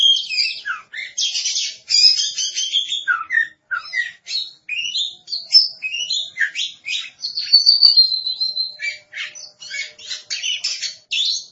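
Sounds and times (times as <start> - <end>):
Oriental magpie-robin singing varied whistles and harsh chips: 0.0 - 11.5.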